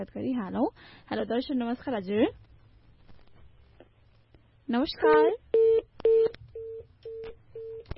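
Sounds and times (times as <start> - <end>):
speech: 0.0 - 2.4, 4.7 - 5.4
disconnected-call tone on a telephone line: 5.5 - 7.9.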